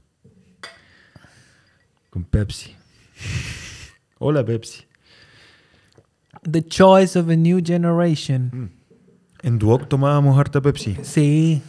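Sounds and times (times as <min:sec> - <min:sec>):
two glasses clinking in a toast: 0:00.6 - 0:02.3
speech: 0:02.2 - 0:03.4, 0:04.2 - 0:04.9, 0:06.4 - 0:08.8, 0:09.4 - 0:11.6.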